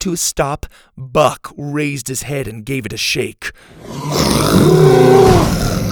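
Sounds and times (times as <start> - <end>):
speech: 0.0 - 5.8
baby dinosaur threatening roar: 3.8 - 5.9.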